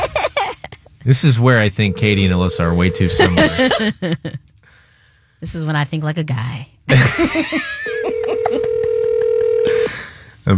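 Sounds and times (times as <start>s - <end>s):
laughter: 0.0s - 0.8s, 3.2s - 4.5s, 6.9s - 8.8s
speech: 1.0s - 4.4s, 5.4s - 8.8s
people chattering: 1.6s - 3.7s
phone call ringing over a speakerphone as a steady electronic tone: 1.6s - 3.8s, 7.8s - 10.0s.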